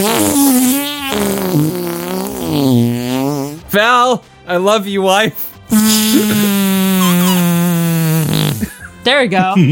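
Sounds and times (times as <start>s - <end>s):
speech: 0.0s - 1.8s, 3.7s - 6.9s, 9.0s - 9.7s
voice imitating a fart into the microphone: 0.0s - 3.7s, 5.7s - 8.8s.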